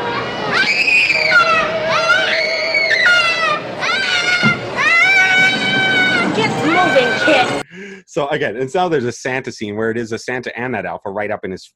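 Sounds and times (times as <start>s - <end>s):
noisy background: 0.0s - 8.2s
boy screaming while thrown down a slide: 0.1s - 7.6s
speech: 8.2s - 11.7s.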